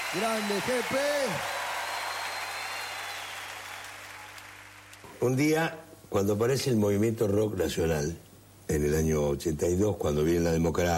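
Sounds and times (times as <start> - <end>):
crowd applauding: 0.0 - 5.3
speech: 0.1 - 1.6, 5.2 - 10.9.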